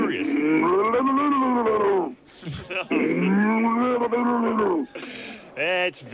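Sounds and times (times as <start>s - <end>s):
man imitating a drowning cow over a phone line: 0.0s - 4.9s
speech: 0.1s - 4.9s, 5.6s - 6.1s
person gasping: 4.9s - 5.5s.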